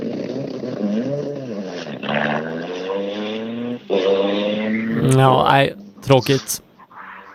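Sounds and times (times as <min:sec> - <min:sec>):
race car engine revving unevenly at a championship race: 0:00.0 - 0:07.3
speech: 0:00.9 - 0:01.4, 0:05.2 - 0:06.7.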